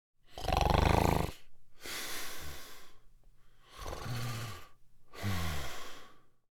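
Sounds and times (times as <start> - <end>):
man snoring loudly while sleeping: 0.3 - 1.4, 3.7 - 6.2.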